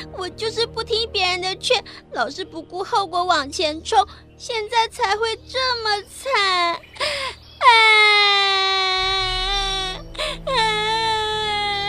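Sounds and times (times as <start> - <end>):
speech: 0.1 - 8.4
girl crying loudly: 7.0 - 11.8.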